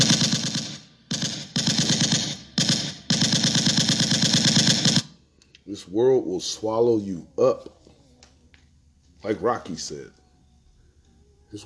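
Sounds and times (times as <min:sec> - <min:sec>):
automatic gunfire: 0:00.0 - 0:05.2
speech: 0:05.9 - 0:07.8, 0:09.2 - 0:10.2.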